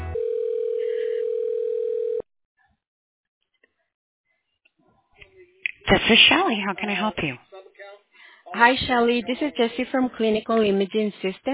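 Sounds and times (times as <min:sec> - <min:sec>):
telephone ringback tone while connecting a call: 0:00.2 - 0:02.2
speech: 0:05.9 - 0:07.5, 0:08.5 - 0:11.5.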